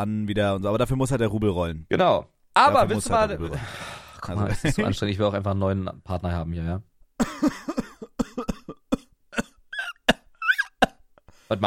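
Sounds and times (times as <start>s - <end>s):
speech: 0.0s - 7.8s
strained wheezy gasps and choking breaths: 3.5s - 4.2s
laughter: 4.4s - 5.0s
person coughing after inhaling vape liquid: 7.2s - 10.7s.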